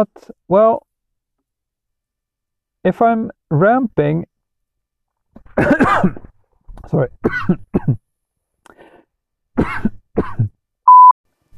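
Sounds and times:
speech: 0.0 - 0.9, 2.8 - 4.3, 5.6 - 6.2, 6.9 - 8.0
person coughing: 5.5 - 6.3, 7.2 - 8.0, 9.6 - 10.6
electronic beep: 10.9 - 11.1.

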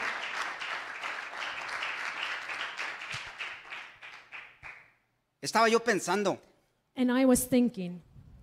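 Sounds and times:
church audience applauding: 0.0 - 5.0
speech: 5.4 - 8.1.

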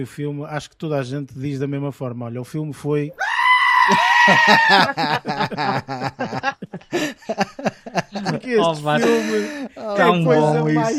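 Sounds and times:
speech: 0.0 - 3.3, 3.9 - 10.9
goat bleating: 3.1 - 5.0
laughter: 3.9 - 10.9.

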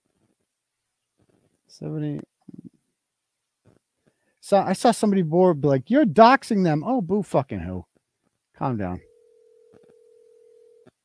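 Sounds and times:
speech: 1.7 - 2.3, 4.5 - 7.9, 8.6 - 9.1
telephone dial tone: 9.0 - 11.0.

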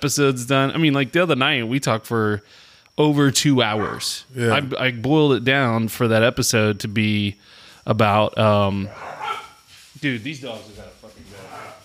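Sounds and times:
speech: 0.0 - 9.2, 10.0 - 11.4
dogs barking: 3.7 - 4.2, 8.9 - 9.6, 11.4 - 11.8.

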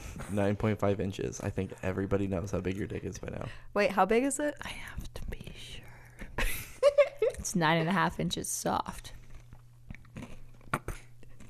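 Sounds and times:
speech: 0.2 - 5.9, 7.4 - 9.2
chewing and crunching food: 9.0 - 11.4.

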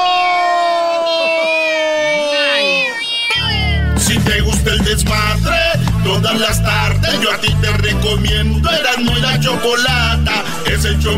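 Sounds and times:
kittens meowing: 0.0 - 4.0
noisy crowd-like commotion: 2.8 - 11.1
speech: 6.4 - 11.1.

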